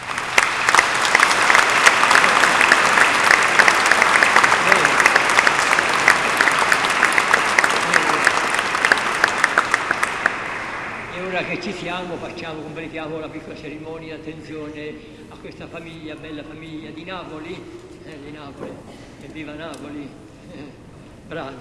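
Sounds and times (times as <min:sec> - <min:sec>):
church audience applauding a family after a nuptial blessing: 0:00.0 - 0:11.8
speech: 0:11.8 - 0:21.5.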